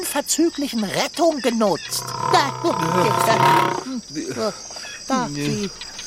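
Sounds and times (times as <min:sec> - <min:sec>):
speech: 0:00.1 - 0:05.9
lioness roaring and growling: 0:01.8 - 0:03.9.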